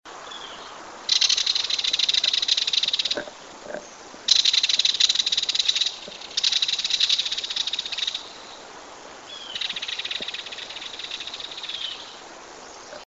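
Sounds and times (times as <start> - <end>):
belted kingfisher calling: 1.1 - 8.6, 9.3 - 12.2.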